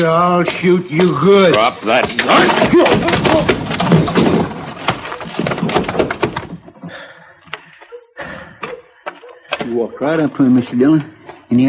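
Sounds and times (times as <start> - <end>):
speech: 0.0 - 4.4, 10.0 - 11.6
struggle of scuffling and heavy thuds: 1.3 - 6.8.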